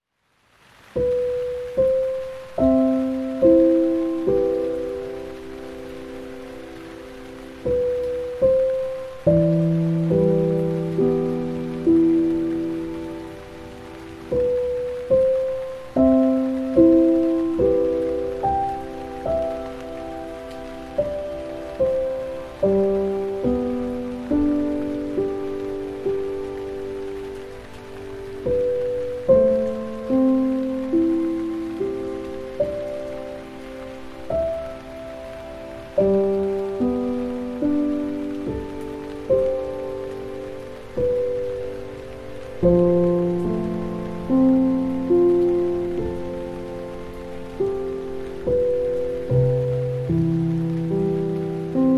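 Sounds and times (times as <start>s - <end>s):
piano: 0.0s - 51.9s
rain: 0.0s - 51.9s.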